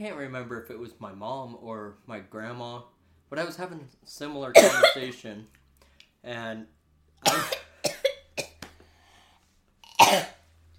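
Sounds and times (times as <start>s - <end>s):
speech: 0.0s - 5.6s, 6.2s - 7.6s
person coughing from choking on saliva: 4.6s - 5.0s, 7.3s - 8.6s, 10.0s - 10.4s.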